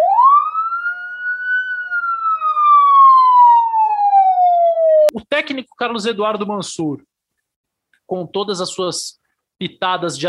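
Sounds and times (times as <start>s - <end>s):
siren sound effect wail: 0.0s - 5.1s
speech: 5.4s - 7.1s, 8.1s - 10.2s.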